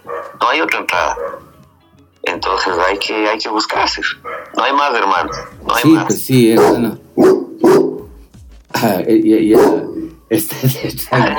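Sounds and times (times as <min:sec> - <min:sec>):
dog barking: 0:00.0 - 0:00.5, 0:01.1 - 0:01.5, 0:04.1 - 0:04.6, 0:05.2 - 0:05.8, 0:06.4 - 0:08.2, 0:09.5 - 0:10.2
speech: 0:00.5 - 0:01.3, 0:02.2 - 0:07.8, 0:08.8 - 0:11.3.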